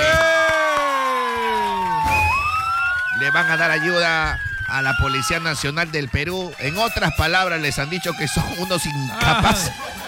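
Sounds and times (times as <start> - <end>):
scattered claps: 0.0 - 3.2
crowd cheering with a long falling whoop: 0.0 - 10.0
speech: 3.3 - 10.0
laughter: 9.1 - 10.0.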